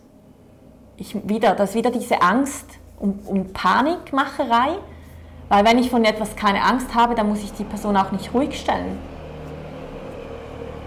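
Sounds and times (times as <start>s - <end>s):
speech: 1.0s - 4.9s, 5.5s - 9.1s
small Italian car driving past with buzzy engine hum: 4.8s - 10.8s.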